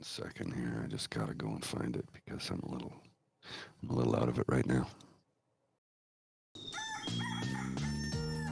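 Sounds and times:
speech: 0.0 - 5.1
rooster crowing: 6.6 - 8.4.

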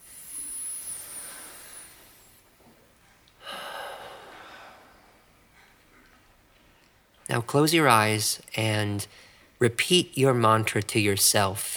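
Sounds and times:
deep breath during a guided meditation: 0.0 - 2.4, 3.4 - 5.7, 9.1 - 9.6
speech: 7.3 - 11.7.

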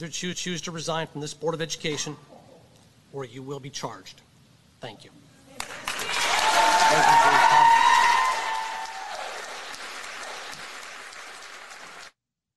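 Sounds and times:
speech: 0.0 - 2.3, 3.1 - 5.2, 6.9 - 7.8
roomful of parents applauding at a meeting: 5.6 - 12.2
raised voices and cheers: 6.0 - 9.6.

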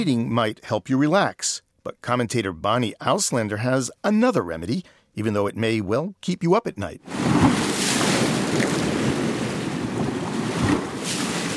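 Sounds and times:
speech: 0.0 - 7.6
waves breaking on the shore: 7.0 - 11.5
wind rumble buffeting the microphone: 7.1 - 11.5.

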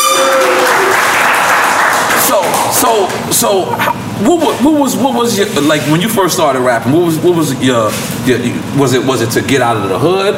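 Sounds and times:
loud audience applause at a live show: 0.0 - 4.0
crowd noise from a live show: 0.0 - 4.3
speech: 2.8 - 10.3.

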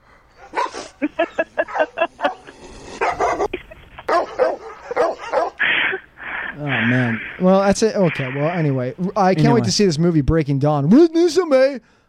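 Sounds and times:
small dog barking and yipping: 0.4 - 2.4, 3.0 - 3.5, 4.1 - 5.6
laughter: 0.7 - 4.3
speech: 7.7 - 12.0.

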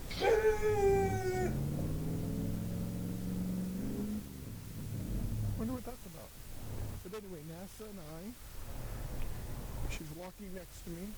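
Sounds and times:
truck engine revving: 0.1 - 5.8
speech: 7.1 - 8.7, 9.9 - 11.1.

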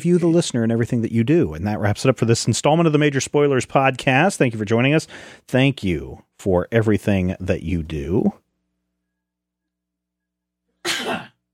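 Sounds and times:
speech: 0.0 - 8.4
sneeze: 10.9 - 11.4.

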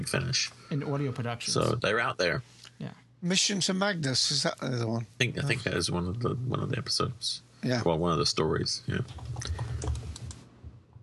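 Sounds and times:
speech: 0.0 - 9.7
rapid frantic keyboard typing: 8.9 - 10.4.

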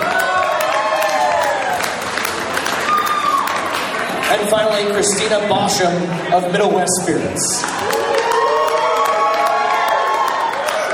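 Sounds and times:
scattered clapping: 0.0 - 5.4, 7.6 - 10.9
crowd of supporters cheering with shouts and whoops: 0.0 - 5.5, 7.5 - 10.9
speech: 4.3 - 8.3.

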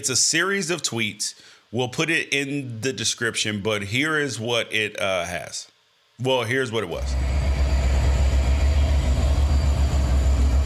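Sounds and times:
speech: 0.0 - 7.5
train with railroad cars rolling past: 7.0 - 10.6.

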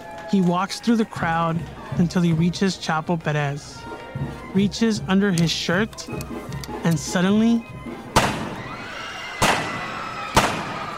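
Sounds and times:
speech: 0.3 - 7.7
gunshots fired point blank: 8.1 - 8.7, 9.4 - 10.9.

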